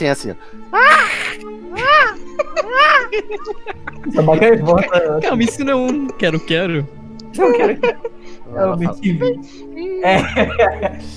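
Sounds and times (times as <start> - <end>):
speech: 0.0 - 1.9, 2.6 - 11.1
child imitating a falcon's screech: 0.7 - 2.2
laughter: 0.8 - 11.1.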